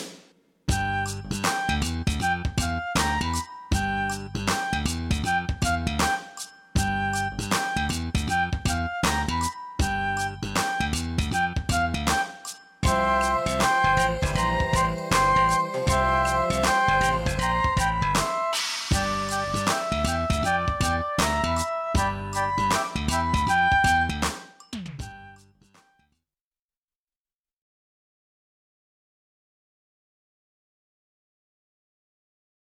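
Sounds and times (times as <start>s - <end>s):
recorder playing funky music: 0.7s - 25.4s.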